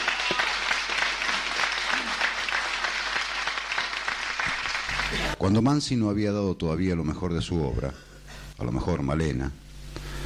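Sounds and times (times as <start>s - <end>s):
audience applause: 0.0s - 5.4s
speech: 5.4s - 9.6s.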